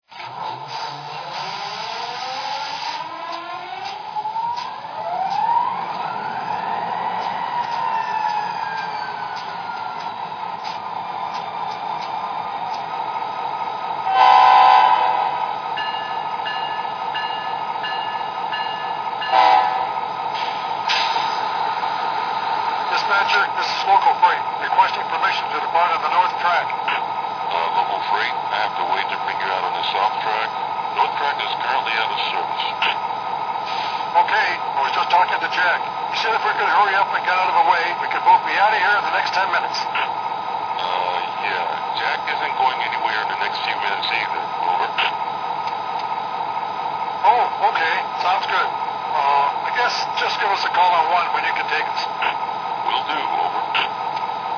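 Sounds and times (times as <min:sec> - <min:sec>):
SD60 trains: 0:00.1 - 0:54.5.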